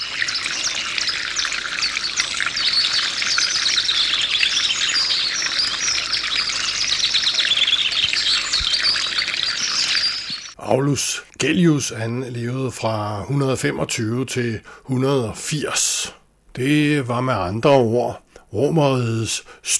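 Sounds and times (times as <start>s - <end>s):
dense birdsong at a country estate: 0.0s - 13.8s
fountain water trickling: 0.0s - 15.8s
speech: 10.7s - 19.7s.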